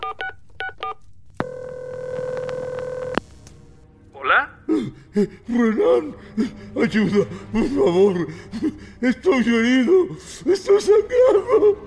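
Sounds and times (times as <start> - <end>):
steady electronic telephone line tone: 1.4 - 3.2
speech: 4.8 - 11.8
laughter: 6.8 - 11.8.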